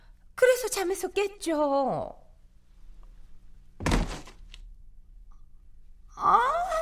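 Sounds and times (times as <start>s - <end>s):
low hum: 0.0s - 6.8s
speech: 0.6s - 2.2s
heavy garbage bag dropping at dawn: 3.8s - 4.5s.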